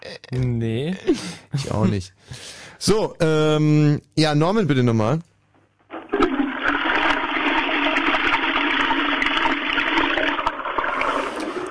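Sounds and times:
speech: 0.3 - 5.3
toilet flushing: 5.9 - 11.6.

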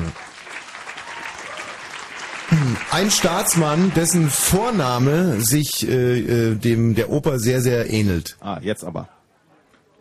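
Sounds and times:
small group clapping: 0.0 - 5.2
speech: 2.7 - 9.2.

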